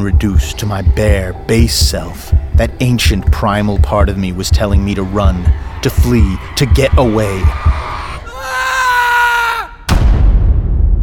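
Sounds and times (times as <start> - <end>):
speech: 0.0 - 8.0
man screaming: 5.5 - 9.9.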